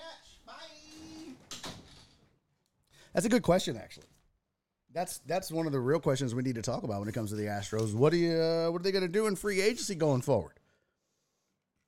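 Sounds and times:
door creaking: 0.8s - 2.2s
speech: 3.1s - 4.2s, 4.9s - 10.6s.

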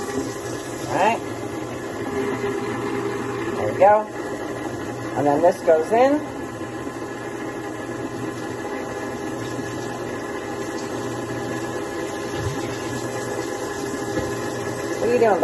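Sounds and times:
running water: 0.0s - 4.0s, 7.8s - 15.4s
low mechanical hum: 0.0s - 15.4s
speech: 0.9s - 1.5s, 3.6s - 4.3s, 5.2s - 6.3s, 15.1s - 15.4s.

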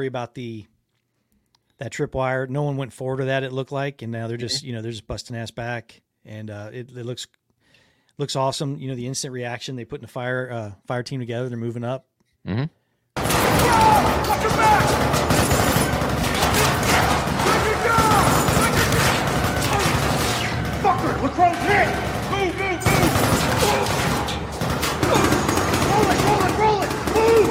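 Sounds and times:
speech: 0.0s - 0.7s, 1.8s - 7.4s, 8.2s - 15.6s
rifles firing blanks in a film combat scene: 13.2s - 27.5s
scattered crashes in a film combat scene: 13.2s - 27.5s.

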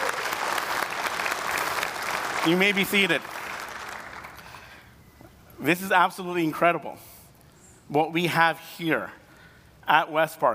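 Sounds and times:
room full of people applauding: 0.0s - 4.4s
speech: 2.4s - 3.4s, 5.6s - 7.1s, 7.9s - 9.2s, 9.9s - 10.5s.

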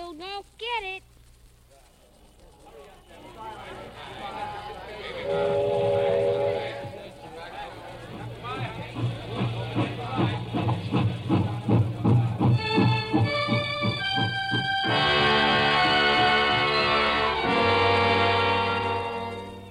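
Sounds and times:
sustained whistle-like tone: 5.0s - 8.0s, 14.8s - 19.6s
train rumbling along railroad tracks: 5.1s - 13.8s.

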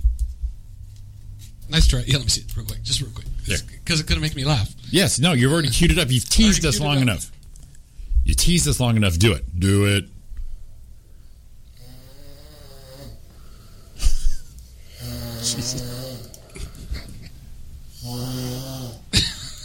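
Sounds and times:
speech: 1.7s - 7.3s, 8.3s - 10.2s
person snoring: 11.8s - 14.0s, 14.8s - 16.8s, 17.9s - 19.2s
person snorting between snores: 13.8s - 17.1s, 17.9s - 19.2s.

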